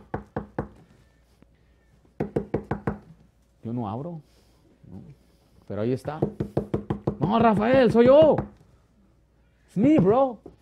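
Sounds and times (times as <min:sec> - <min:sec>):
knocking on a door: 0:02.2 - 0:03.1, 0:06.2 - 0:08.6
speech: 0:03.7 - 0:06.6, 0:07.2 - 0:08.6, 0:09.8 - 0:10.5.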